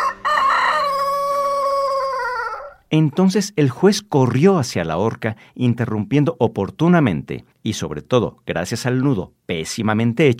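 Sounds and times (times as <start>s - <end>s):
rooster crowing: 0.0s - 2.9s
speech: 2.9s - 10.3s.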